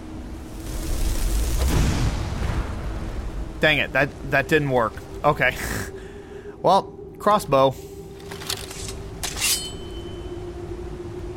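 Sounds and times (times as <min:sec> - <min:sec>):
fireball spell exploding in a fantasy video game fight: 0:00.4 - 0:03.4
speech: 0:03.6 - 0:06.0, 0:06.6 - 0:07.9.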